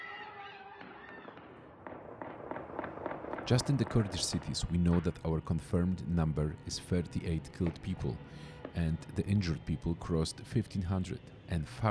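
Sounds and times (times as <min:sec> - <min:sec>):
noisy outdoor background: 0:00.0 - 0:11.8
gunshots: 0:00.4 - 0:05.1
speech: 0:03.5 - 0:11.8.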